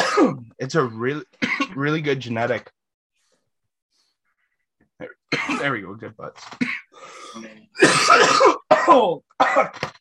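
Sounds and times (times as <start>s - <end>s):
person coughing: 0.0s - 0.4s, 5.3s - 5.8s, 7.8s - 9.9s
speech: 0.2s - 2.8s, 5.0s - 9.9s.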